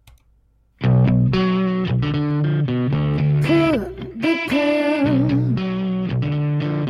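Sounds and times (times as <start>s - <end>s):
loud distorted rock song with fuzzy guitar chords: 0.8s - 6.8s
singer's voice over a rock band: 3.2s - 6.0s.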